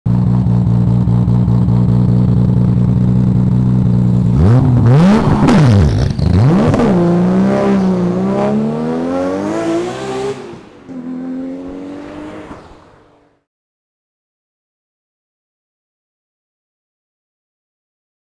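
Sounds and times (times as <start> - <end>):
Skyline GTR pulling away: 0.1 - 13.4.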